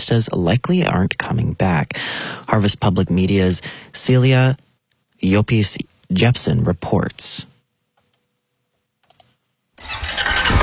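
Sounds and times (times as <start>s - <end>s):
speech: 0.0s - 4.6s, 5.2s - 7.5s
four-wheeler engine starting on a southeast Nebraska ranch: 9.8s - 10.6s.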